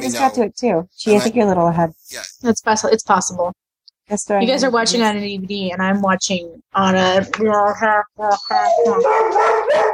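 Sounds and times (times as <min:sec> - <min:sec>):
speech: 0:00.0 - 0:09.9
dog barking and yowling: 0:08.6 - 0:09.9.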